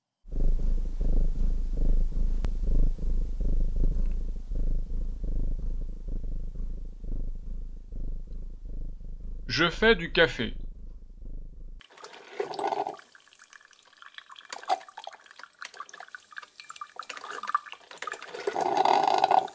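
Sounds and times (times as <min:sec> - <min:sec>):
contented cat purring: 0:00.2 - 0:11.8, 0:18.3 - 0:19.5
speech: 0:09.5 - 0:10.6.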